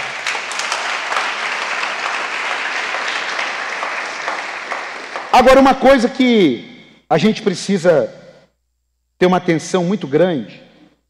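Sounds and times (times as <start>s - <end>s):
Christian audience applauding: 0.0s - 6.1s
speech: 5.4s - 8.2s, 9.2s - 10.7s.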